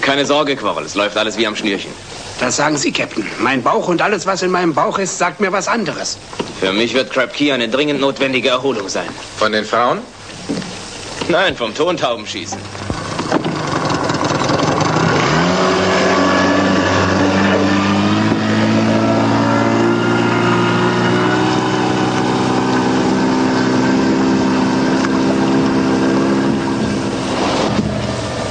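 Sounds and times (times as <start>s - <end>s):
speech: 0.1s - 10.2s, 11.3s - 12.9s
motorboat engine starting and running: 12.5s - 28.4s.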